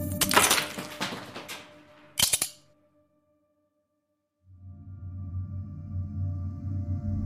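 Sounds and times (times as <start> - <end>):
nutcracker crushing ice cube on a balcony: 0.0 - 2.6
low steady drone: 4.5 - 7.2.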